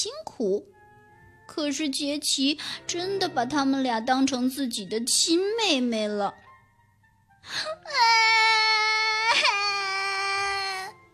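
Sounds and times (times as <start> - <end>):
speech: 0.0 - 0.8, 1.6 - 6.4, 7.4 - 8.8
child crying: 7.7 - 11.0.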